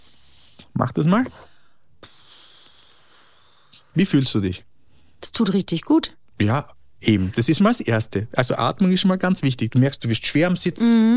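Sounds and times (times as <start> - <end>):
speech: 0.8 - 1.5, 4.0 - 11.1
long forceful breath blown out through pursed lips: 2.0 - 3.8.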